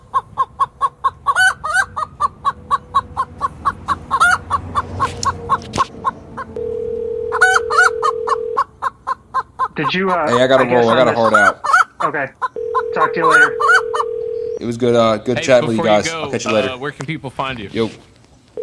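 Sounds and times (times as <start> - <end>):
flock of chickens clucking: 0.0 - 16.8
rooster crowing: 1.3 - 8.7, 12.6 - 14.5
speech: 9.8 - 12.4, 13.0 - 13.6, 14.6 - 18.1.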